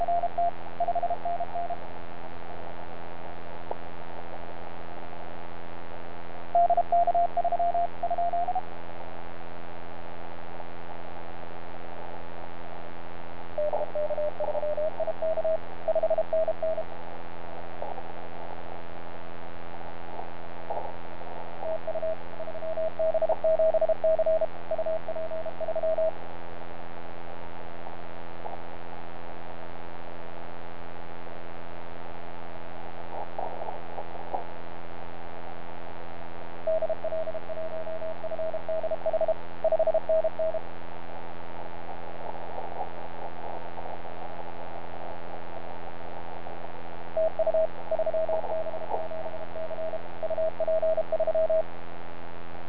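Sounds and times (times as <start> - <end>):
30m band CW radio signal: 0.0 - 1.8, 6.5 - 8.7, 13.5 - 17.0, 20.7 - 26.2, 36.5 - 40.7, 41.6 - 51.8.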